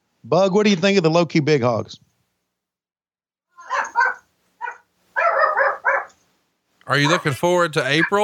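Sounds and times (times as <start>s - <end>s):
speech: 0.2s - 2.1s, 6.9s - 8.2s
pet dog barking and yowling: 3.6s - 6.2s, 7.0s - 8.2s.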